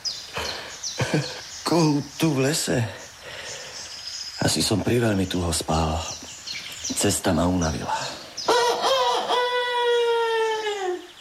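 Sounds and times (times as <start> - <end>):
speech: 1.1 - 3.0, 4.4 - 6.2, 6.9 - 8.2
rooster crowing: 8.5 - 11.1.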